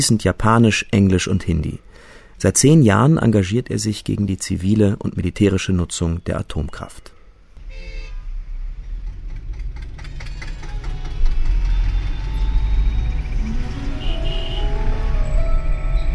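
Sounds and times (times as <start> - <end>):
speech: 0.0 - 7.2
car driving out of Delhi toward Gorakhpur: 7.6 - 16.1.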